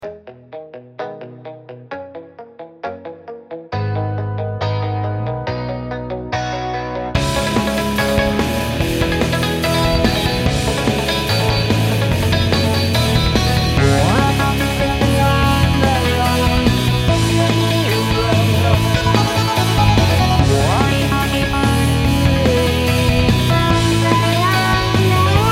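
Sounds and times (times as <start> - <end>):
urgent rock track: 0.0 - 25.5.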